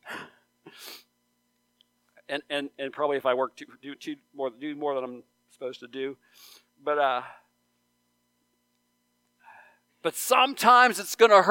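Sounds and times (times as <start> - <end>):
person sneezing: 0.0 - 1.1
speech: 2.3 - 7.4, 10.0 - 11.4.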